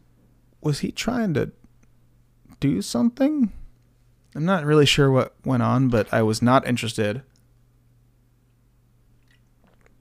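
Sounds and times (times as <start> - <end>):
speech: 0.6 - 1.6, 2.6 - 3.6, 4.4 - 7.3
person sipping sparkling water: 9.2 - 9.9.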